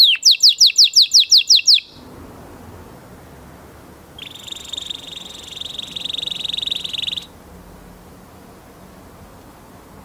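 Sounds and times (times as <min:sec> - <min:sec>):
Portuguese canary trilling: 0:00.0 - 0:02.0, 0:04.2 - 0:07.3.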